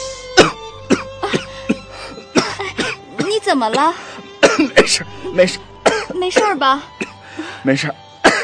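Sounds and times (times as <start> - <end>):
person coughing after choking on cigarette smoke: 0.4 - 5.2, 5.8 - 7.2, 8.3 - 8.4
speech: 3.4 - 4.1, 4.8 - 7.0, 7.6 - 8.4.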